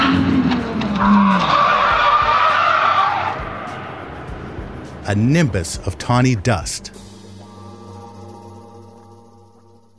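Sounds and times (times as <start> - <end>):
Bugatti Veyron tire screech spinning off a racetrack: 0.0 - 4.3
Bugatti Veyron engine roaring: 0.0 - 5.2
speech: 5.1 - 7.0.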